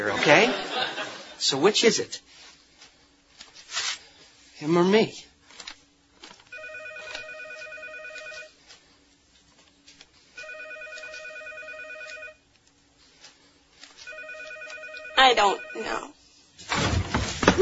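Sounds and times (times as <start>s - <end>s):
laughter: 0.0s - 1.4s, 17.5s - 17.6s
speech: 0.0s - 2.4s, 4.6s - 5.3s, 15.3s - 16.2s
telephone ringing in electronic warbling trill: 6.5s - 8.5s, 10.4s - 12.4s, 14.0s - 16.2s.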